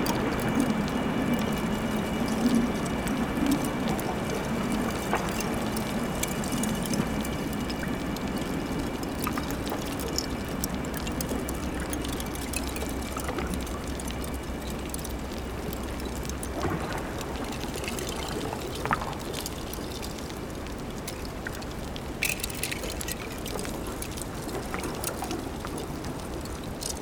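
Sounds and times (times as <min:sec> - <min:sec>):
underwater low rumble under ice in a cove: 0:00.0 - 0:20.8
pistol shrimp crackling under ice: 0:00.0 - 0:27.0.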